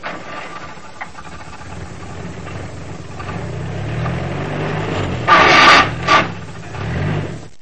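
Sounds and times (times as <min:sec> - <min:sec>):
truck engine running in a parking lot: 0:00.0 - 0:07.6.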